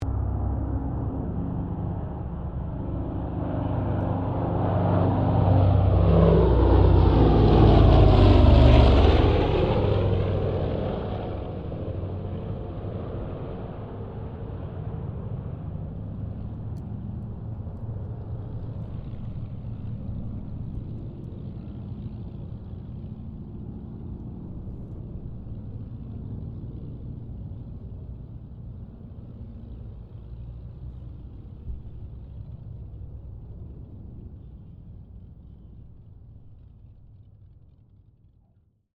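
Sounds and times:
Lockheed L-1049 Super Constellation aircraft passing heard from interior: 0.0s - 38.8s.

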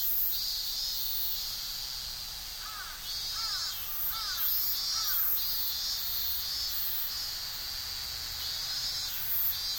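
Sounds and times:
cicadas buzzing chorus in Tokyo summer: 0.0s - 9.7s.

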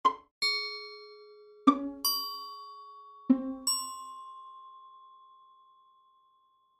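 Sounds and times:
cartoon pizzicato strings: 1.7s - 2.1s, 3.3s - 3.7s.

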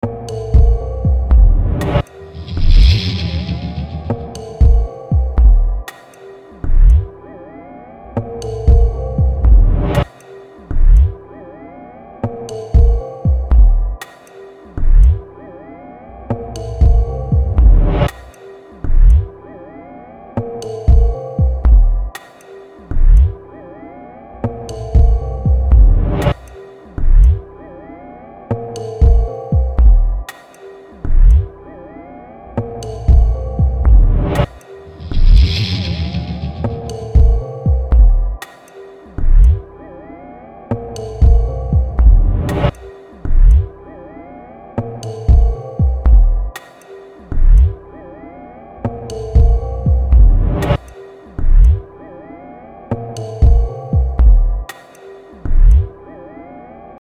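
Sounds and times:
soft relaxed electronica beat loop: 0.0s - 3.0s, 3.8s - 7.2s, 8.1s - 11.3s, 12.2s - 15.4s, 16.3s - 19.4s, 20.4s - 23.6s, 24.4s - 27.8s, 28.5s - 31.8s, 32.5s - 35.6s, 36.6s - 39.8s, 40.7s - 43.9s, 44.8s - 47.9s, 48.8s - 52.0s, 52.9s - 56.0s.

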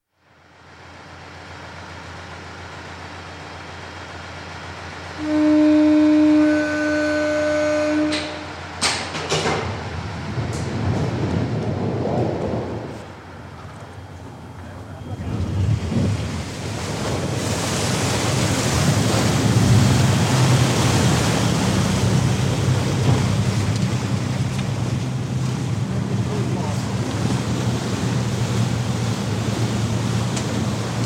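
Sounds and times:
48ft 6in Oakley class self-righting lifeboat launching, recorded on board: 0.5s - 31.0s.

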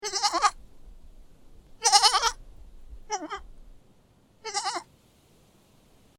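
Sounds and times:
goat kid bleating: 0.0s - 0.6s, 1.8s - 2.4s, 3.0s - 3.5s, 4.4s - 4.9s.

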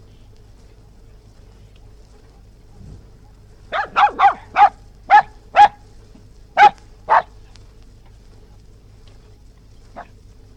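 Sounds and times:
West Highland white terrier yapping barks outdoors: 3.7s - 5.8s, 6.6s - 7.4s, 10.0s - 10.2s.

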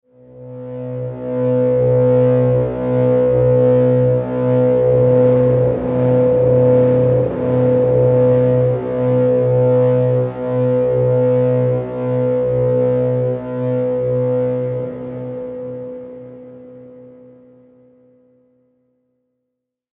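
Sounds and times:
sweeper electrical pulse hum transition accent: 1.6s - 15.9s.

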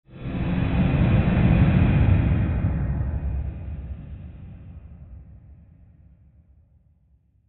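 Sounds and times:
airy rushing rumble swell: 0.1s - 5.4s.

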